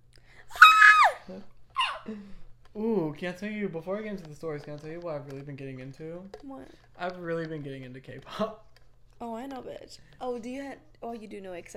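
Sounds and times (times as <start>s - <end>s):
person screaming shrilly: 0.5s - 2.1s
speech: 1.3s - 11.7s.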